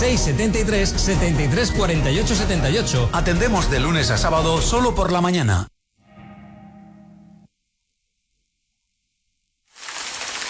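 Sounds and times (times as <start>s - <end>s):
music: 0.0s - 5.3s, 6.0s - 7.5s
speech: 0.1s - 5.7s
steady rain falling: 9.8s - 10.4s.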